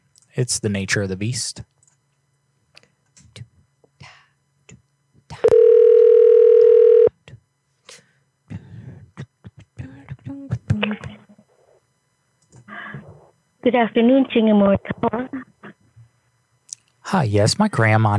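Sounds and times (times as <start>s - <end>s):
speech: 0.4s - 1.7s, 13.7s - 15.5s, 17.1s - 18.1s
outgoing phone call ringing tone: 5.4s - 7.1s.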